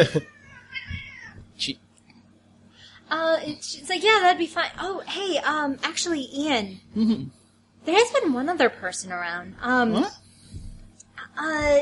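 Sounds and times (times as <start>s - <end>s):
speech: 0.0s - 0.4s, 1.6s - 1.8s, 3.1s - 10.2s, 11.4s - 11.8s
cat meowing unhappily: 0.3s - 1.4s.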